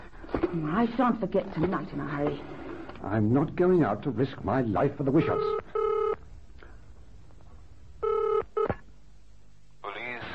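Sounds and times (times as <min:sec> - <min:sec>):
speech: 0:00.5 - 0:05.6
telephone dialing with short buzzy electronic tone bursts: 0:05.4 - 0:06.2, 0:08.0 - 0:08.8.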